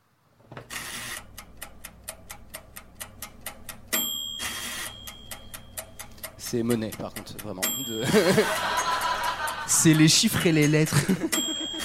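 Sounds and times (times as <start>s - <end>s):
rapid ticking of a kitchen appliance: 1.2s - 4.0s, 4.7s - 11.8s
high ringing tone: 3.9s - 6.0s, 7.6s - 9.5s, 11.2s - 11.8s
speech: 6.5s - 8.9s, 9.7s - 11.4s
laughter: 8.0s - 11.8s.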